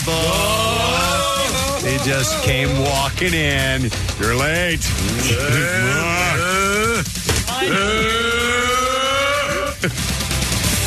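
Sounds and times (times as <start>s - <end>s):
laughter: 0.0s - 3.1s, 4.9s - 10.2s
speech: 1.9s - 8.6s, 9.8s - 10.2s
person imitating a cow mooing: 5.1s - 7.0s, 7.6s - 9.8s.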